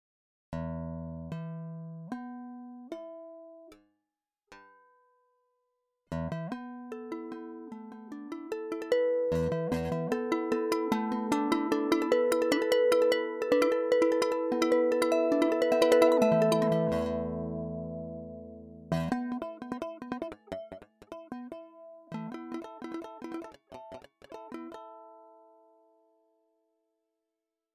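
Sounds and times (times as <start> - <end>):
harmonics: 8.9 - 23.5.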